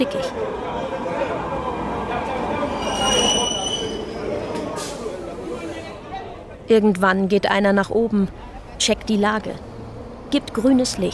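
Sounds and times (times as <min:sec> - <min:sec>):
speech: 0:00.0 - 0:00.5, 0:06.7 - 0:09.7, 0:10.3 - 0:11.1
faint voices murmuring in an echoing metro station: 0:00.0 - 0:06.7
train rumbling through an underground metro station: 0:00.3 - 0:05.8
train wheels giving off high drawn-out metallic squeals: 0:02.7 - 0:04.3.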